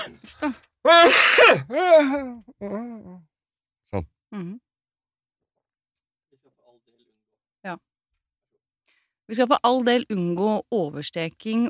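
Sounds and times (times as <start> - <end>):
speech: 0.0 - 3.3, 3.9 - 4.6, 7.6 - 7.9, 9.3 - 11.6
person coughing and clearing throat from something caught in the throat: 0.9 - 2.3.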